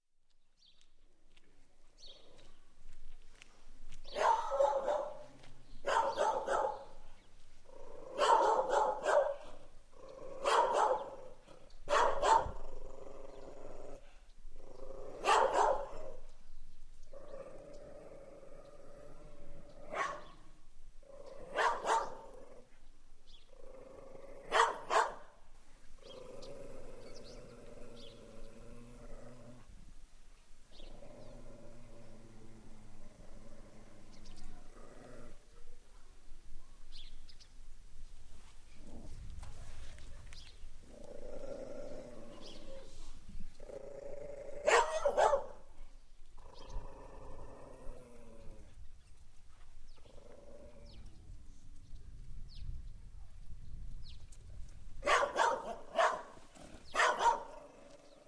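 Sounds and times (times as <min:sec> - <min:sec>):
dogs barking: 0:04.1 - 0:07.0, 0:08.1 - 0:09.7, 0:10.3 - 0:12.6, 0:15.2 - 0:16.2, 0:19.9 - 0:20.4, 0:21.4 - 0:22.4, 0:24.4 - 0:25.3, 0:44.6 - 0:45.7, 0:55.0 - 0:57.7.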